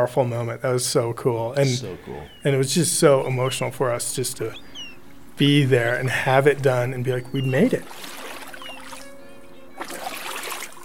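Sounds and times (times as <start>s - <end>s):
speech: 0.0s - 4.7s, 5.4s - 8.2s
paddles dipping into water: 7.2s - 10.8s.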